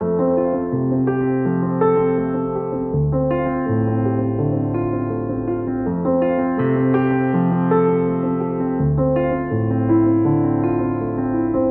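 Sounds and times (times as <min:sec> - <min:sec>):
classical piano piece in F: 0:00.0 - 0:11.6.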